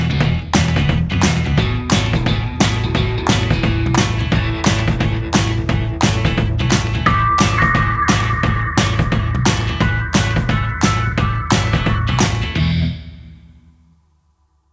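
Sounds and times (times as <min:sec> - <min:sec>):
indie pop instrumental with pads: 0:00.2 - 0:12.8.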